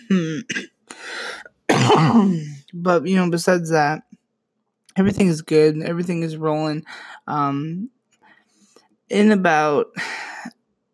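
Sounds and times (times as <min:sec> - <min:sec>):
speech: 0:00.1 - 0:00.7, 0:02.0 - 0:04.1, 0:05.0 - 0:08.0, 0:09.1 - 0:10.6
short cough from someone getting over an illness: 0:01.7 - 0:02.4.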